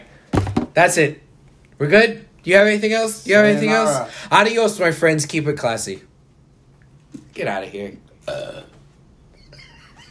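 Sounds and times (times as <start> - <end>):
speech: 0.8 - 1.2, 1.8 - 6.1, 7.4 - 8.8
short burp: 8.2 - 8.8.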